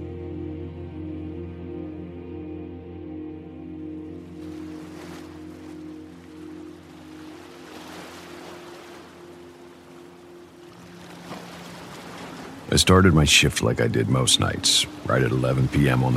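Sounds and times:
low droning hum: 0.0s - 16.1s
ocean waves washing on a shoreline: 4.2s - 16.1s
speech: 12.8s - 16.1s.

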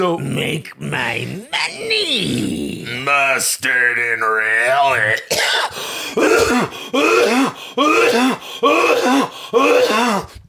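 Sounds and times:
speech: 0.0s - 10.4s
exaggerated hacking coughing fit with groaning: 5.3s - 10.3s.

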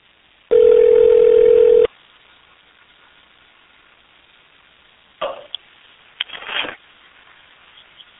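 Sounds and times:
telephone ringback tone on an outgoing call: 0.5s - 1.9s.

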